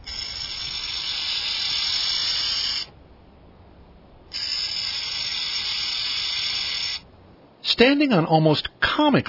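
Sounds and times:
burrowing owl hissing: 0.0s - 3.0s, 4.3s - 7.1s
speech: 7.8s - 9.2s.

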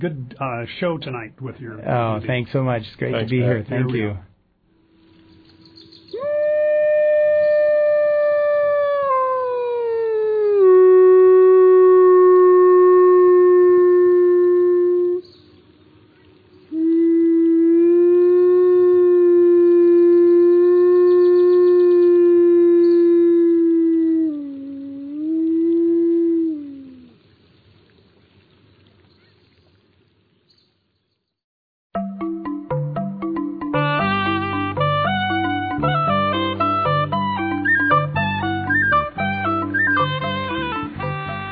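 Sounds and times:
speech: 0.0s - 4.3s
wolf howling: 6.1s - 15.3s, 16.8s - 27.2s, 35.1s - 41.4s
plucked music: 32.0s - 41.4s.

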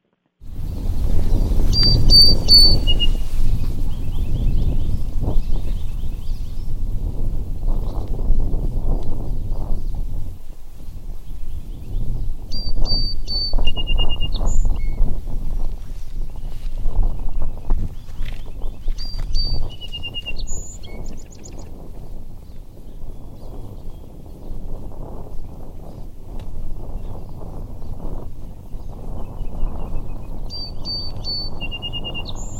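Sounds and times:
low rumble of wind or water: 0.4s - 32.5s
song sparrow singing: 0.4s - 32.5s.

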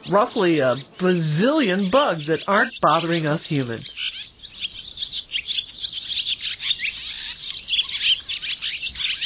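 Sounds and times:
barn swallows twittering and chirping: 0.0s - 9.2s
speech: 0.1s - 4.0s.

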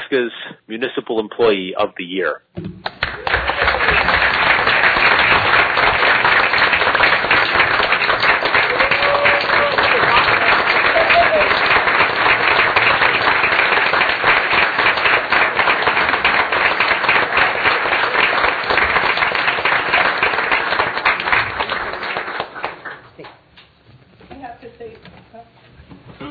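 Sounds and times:
speech: 0.1s - 2.9s
audience applauding: 2.8s - 23.3s.

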